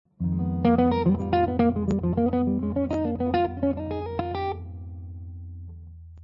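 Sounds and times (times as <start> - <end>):
jazz guitar lines in Locrian natural 2: 0.2 - 5.7.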